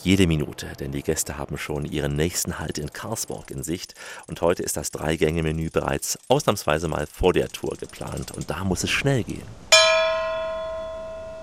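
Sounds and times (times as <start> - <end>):
speech: 0.0 - 9.8
bell struck like a gong to call passengers to dinner: 9.7 - 11.4.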